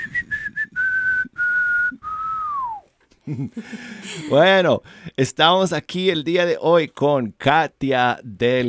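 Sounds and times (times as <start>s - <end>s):
person whistling a tune: 0.0s - 2.9s
speech: 3.3s - 8.6s.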